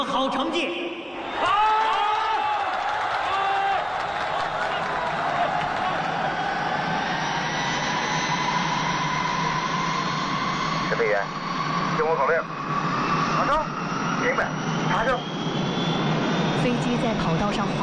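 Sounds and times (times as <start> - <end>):
crowd noise: 0.7 - 7.2
aircraft jet engine roaring during takeoff on its maiden flight: 2.3 - 17.8
aircraft whining tone rising in pitch: 3.3 - 17.8.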